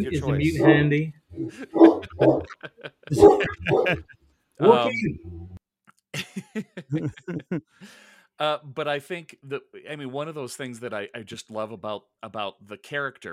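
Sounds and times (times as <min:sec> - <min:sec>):
speech: 0:00.0 - 0:05.4, 0:06.2 - 0:13.3
two dogs trading barks: 0:01.4 - 0:04.1
laughter: 0:01.5 - 0:05.0, 0:06.2 - 0:08.0.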